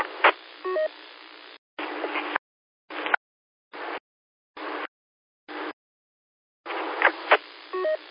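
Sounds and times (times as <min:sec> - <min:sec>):
radio static: 0:00.0 - 0:03.2, 0:06.7 - 0:08.0
DTMF tones dialing an EchoLink test station over a radio repeater: 0:07.7 - 0:08.0.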